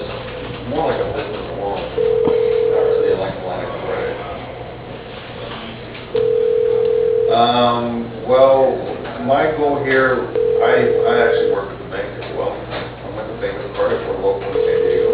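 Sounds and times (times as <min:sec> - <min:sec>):
voices: 0:00.0 - 0:06.3, 0:07.3 - 0:15.1
speech: 0:00.7 - 0:01.4, 0:07.4 - 0:11.5
telephone ringback tone while a call is transferred to a receptionist: 0:02.0 - 0:03.3, 0:06.2 - 0:07.6, 0:10.4 - 0:11.6, 0:14.6 - 0:15.1.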